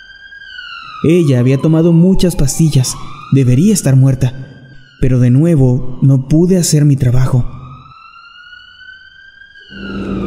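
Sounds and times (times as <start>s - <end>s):
ambulance siren wailing as the ambulance speeds off: 0.0s - 10.2s
speech: 1.0s - 7.6s
low rumble of ambulance engine: 9.7s - 10.2s.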